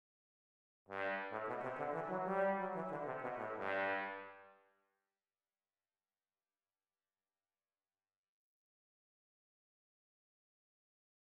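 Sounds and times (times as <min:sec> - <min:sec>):
trombone solo playing a G major scale: 0:00.9 - 0:04.4.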